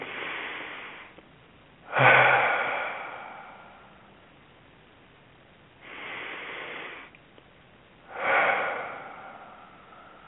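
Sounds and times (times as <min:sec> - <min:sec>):
slow deep breathing during a guided meditation: 0:00.0 - 0:01.2, 0:01.8 - 0:04.3, 0:05.8 - 0:07.2, 0:08.0 - 0:10.2.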